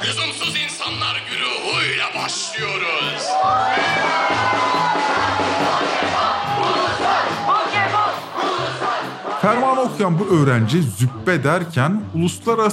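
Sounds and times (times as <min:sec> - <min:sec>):
speech: 0:00.1 - 0:04.4, 0:09.4 - 0:12.7
loud crowd of students chanting and cheering in unison: 0:02.4 - 0:09.7
steady pounding drumbeat: 0:03.6 - 0:09.6.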